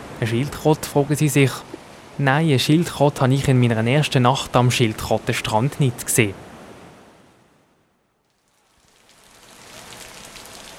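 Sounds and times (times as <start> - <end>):
faint surf-like rumble: 0.0 - 7.4
speech: 0.2 - 6.5
steady rain pattering on a taut tent roof: 8.2 - 10.7.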